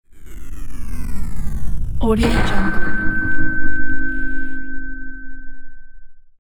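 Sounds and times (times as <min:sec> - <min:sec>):
cinematic metal hit: 0:02.0 - 0:06.0.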